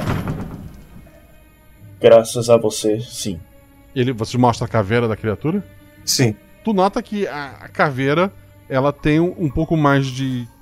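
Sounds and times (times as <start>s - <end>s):
carriage door closing with a solid thud: 0.0s - 1.3s
speech: 2.0s - 10.5s.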